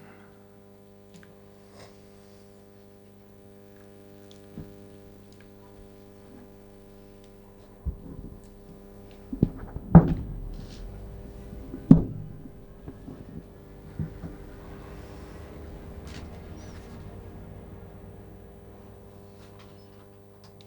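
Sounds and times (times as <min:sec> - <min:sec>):
low synthetic hum of layered electronic tones: 0:04.6 - 0:20.0
soft thumps and clicks: 0:07.1 - 0:18.0.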